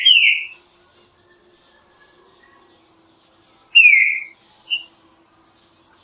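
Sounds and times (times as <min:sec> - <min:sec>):
Green-winged saltator whistled song: 0:00.0 - 0:02.6, 0:03.7 - 0:05.0.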